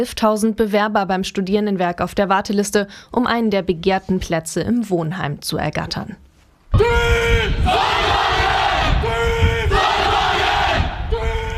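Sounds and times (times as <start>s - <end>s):
speech: 0.0s - 8.0s
solar car racing team students shouting a battle cry at a race in Belgium: 6.8s - 11.5s.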